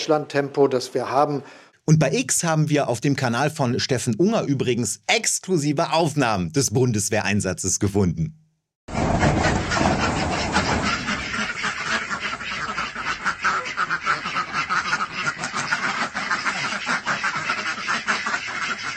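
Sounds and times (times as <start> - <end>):
speech: 0.0 - 9.6
flock of geese honking and cackling: 9.0 - 18.9.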